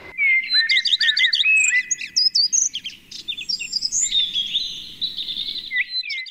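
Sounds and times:
garden birds singing and calling: 0.0 - 6.3.

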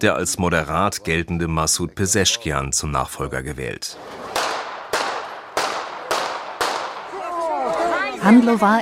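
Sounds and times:
speech: 0.0 - 4.2, 8.2 - 8.8
gunshots fired at the roadside: 4.0 - 7.9.

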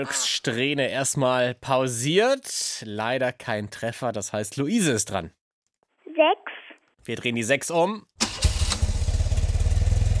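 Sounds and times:
speech: 0.0 - 5.4, 6.2 - 6.4, 7.0 - 8.1
motorcycle engine cranking, firing up and idling: 8.2 - 10.1.

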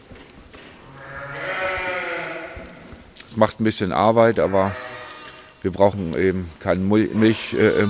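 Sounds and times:
lamb bleating in a pen: 0.9 - 2.8, 4.4 - 5.6, 6.9 - 7.8
speech: 3.4 - 4.9, 5.6 - 7.8.

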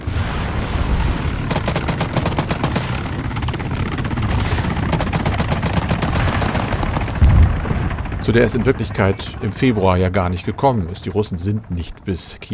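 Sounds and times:
dense constant roar in a war video game: 0.0 - 12.5
machine-gun fire in a war video game: 1.4 - 3.4, 4.2 - 7.7
speech: 8.2 - 12.5.

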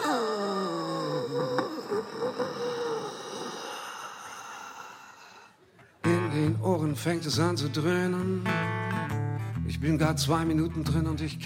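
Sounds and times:
performer imitating a drawn-out falling moan: 0.0 - 5.6
performer imitating breathy heavy exhaling: 0.0 - 6.0
speech: 6.6 - 8.7, 9.8 - 11.4.

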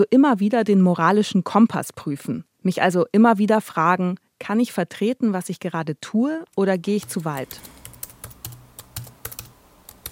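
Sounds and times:
speech: 0.0 - 7.8
rapid typing on a computer keyboard writing a message: 7.0 - 10.0.

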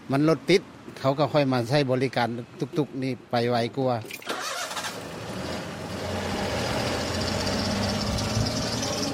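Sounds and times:
man talking: 0.0 - 4.1
road noise during a tuk-tuk ride: 0.0 - 9.1
wind during a tuk-tuk ride: 0.0 - 9.1
tuk-tuk engine running with a rough drone: 4.4 - 9.1.

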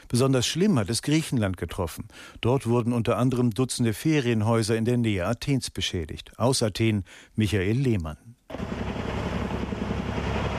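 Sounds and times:
speech: 0.1 - 8.8
firefighting helicopters flying over a wildfire near Athens, Greece: 8.5 - 10.5.

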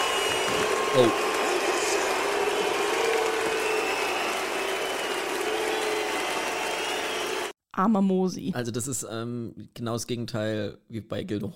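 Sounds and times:
large audience clapping at a live stage performance: 0.0 - 7.5
speech: 0.9 - 1.3, 7.8 - 11.5.

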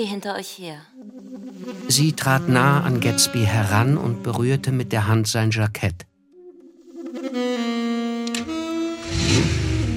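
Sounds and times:
speech: 0.0 - 0.9, 1.6 - 6.1
car engine revving and pulling away: 8.2 - 9.9.

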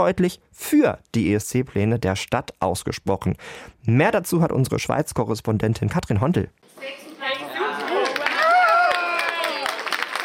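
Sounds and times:
speech: 0.0 - 7.4
excited shouts: 7.4 - 9.9
crowd cheering and whooping in a congress centre: 7.6 - 10.2
steady applause in a congress centre: 7.6 - 10.2.

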